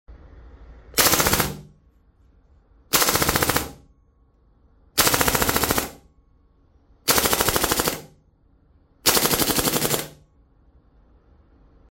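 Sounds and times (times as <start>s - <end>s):
FAMAS assault rifle: 1.0s - 1.7s, 2.9s - 3.8s, 5.0s - 6.0s, 7.1s - 8.2s, 9.0s - 10.2s.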